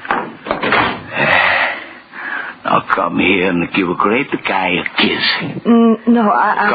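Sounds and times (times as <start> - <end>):
door being pushed shut with scraping and soft thuds: 0.1 - 1.1
speech: 2.8 - 6.7.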